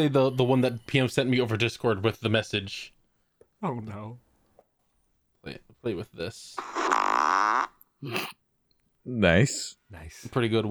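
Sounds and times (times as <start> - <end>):
speech: 0.0 - 3.0, 3.6 - 4.2, 5.4 - 6.8, 8.0 - 8.4, 9.0 - 10.6
loud buzzy recorded fart: 6.6 - 8.3.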